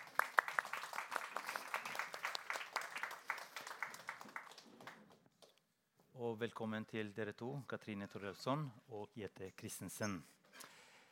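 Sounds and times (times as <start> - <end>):
audience applause, many hands clapping: 0.0 - 5.2
speech: 6.2 - 10.4.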